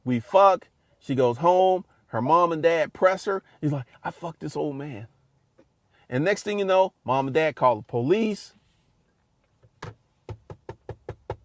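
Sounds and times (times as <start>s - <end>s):
speech: 0.0s - 5.1s, 6.1s - 8.6s
heavy knocking on a door: 10.3s - 11.4s.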